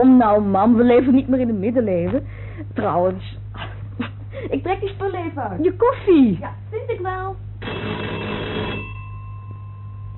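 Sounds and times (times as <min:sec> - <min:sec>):
speech: 0:00.0 - 0:03.4, 0:04.0 - 0:08.1
electric doorbell ringing: 0:07.6 - 0:10.1.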